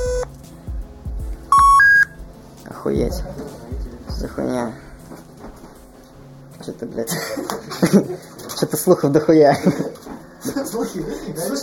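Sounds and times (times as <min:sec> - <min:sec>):
electronic telephone dialing beeps: 0:01.5 - 0:02.1
speech: 0:02.8 - 0:03.6, 0:04.2 - 0:04.9, 0:06.6 - 0:11.6
laughter: 0:07.0 - 0:08.6, 0:09.4 - 0:11.4.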